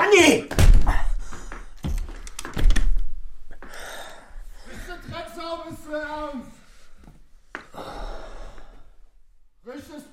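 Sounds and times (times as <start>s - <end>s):
speech: 0.2s - 0.6s
door being slammed shut hard: 0.5s - 3.3s.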